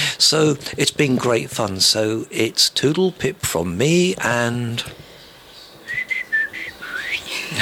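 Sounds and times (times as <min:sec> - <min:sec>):
speech: 0:00.2 - 0:05.1
thin breathy attempted whistle: 0:05.9 - 0:07.6.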